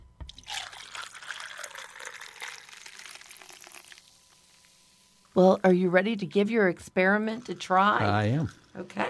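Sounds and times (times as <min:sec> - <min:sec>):
Amaretto and Dr. Pepper poured over ice into a glass: 0:00.3 - 0:04.1
speech: 0:05.4 - 0:09.0.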